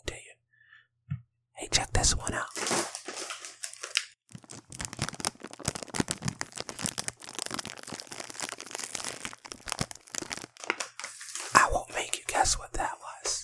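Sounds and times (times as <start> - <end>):
speech: 1.8 - 2.9, 12.4 - 12.9
plastic bag of gluten-free mini pretzels crinkling as a hand squeezes it: 2.5 - 12.1.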